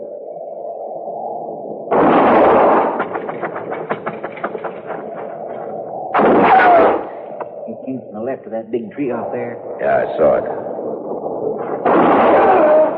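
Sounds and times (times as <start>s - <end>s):
gunshots fired toward a thicket: 1.9s - 5.1s, 6.2s - 7.3s, 11.6s - 12.9s
speech: 7.9s - 11.0s.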